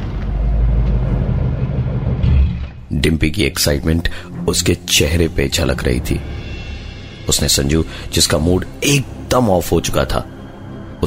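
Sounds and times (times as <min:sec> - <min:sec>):
car engine rumbling as the car pulls over to the side of the road late at night: 0:00.0 - 0:03.0
speech: 0:03.0 - 0:06.4, 0:07.2 - 0:10.4.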